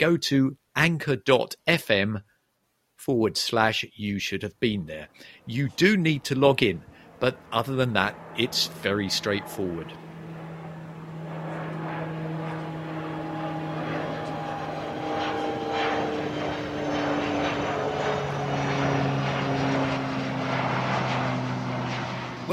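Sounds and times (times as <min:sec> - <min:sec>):
speech: 0:00.0 - 0:02.3, 0:03.0 - 0:10.0
twin-engine propeller plane droning: 0:04.9 - 0:22.5.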